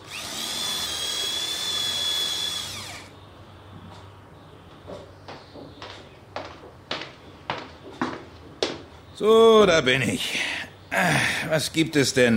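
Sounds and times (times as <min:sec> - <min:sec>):
power drill whining while drilling a hole in a dining room: 0:00.0 - 0:03.1
speech: 0:09.2 - 0:12.3.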